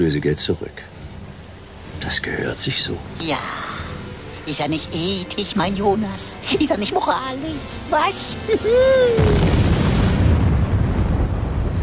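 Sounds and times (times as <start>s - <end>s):
speech: 0.0s - 0.9s, 2.0s - 3.7s, 4.5s - 9.5s
bomb explosion aboard a ship: 9.2s - 11.8s.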